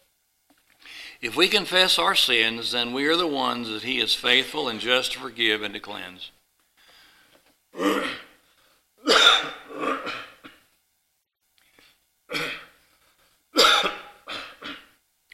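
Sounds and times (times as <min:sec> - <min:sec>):
speech: 0:01.2 - 0:06.4, 0:07.8 - 0:08.2
harsh coughing fit: 0:07.8 - 0:08.4, 0:09.0 - 0:10.7, 0:12.3 - 0:12.8, 0:13.5 - 0:15.0.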